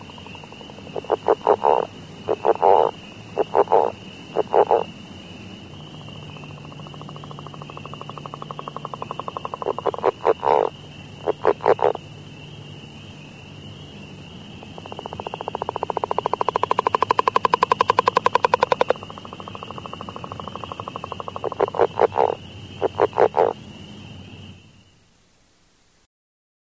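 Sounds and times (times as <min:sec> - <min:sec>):
Northern leopard frog giving a long pulsed snore: 0:00.0 - 0:04.9, 0:06.4 - 0:12.0, 0:14.6 - 0:23.6.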